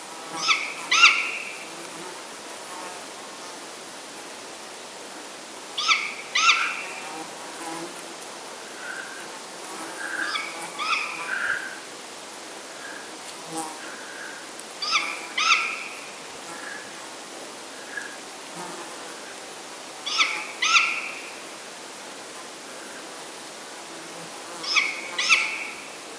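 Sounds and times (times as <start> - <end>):
great grey owl Strix nebulosa calling: 0.4 - 1.6, 5.8 - 7.0, 10.0 - 11.8, 14.8 - 16.9, 20.0 - 21.3, 24.6 - 25.8.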